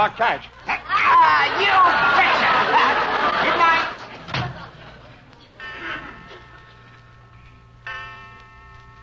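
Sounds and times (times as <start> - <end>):
speech: 0.0 - 0.7, 1.3 - 3.8
low hum: 0.0 - 9.0
laughter: 0.6 - 5.3
clock chime strikes: 5.6 - 9.0.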